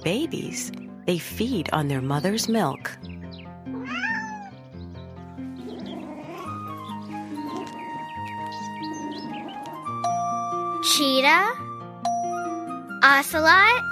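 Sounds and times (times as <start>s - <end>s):
speech: 0.0s - 3.0s, 11.0s - 11.6s, 13.0s - 13.9s
music: 0.0s - 13.9s
kitten meowing: 3.7s - 4.6s, 5.6s - 10.0s.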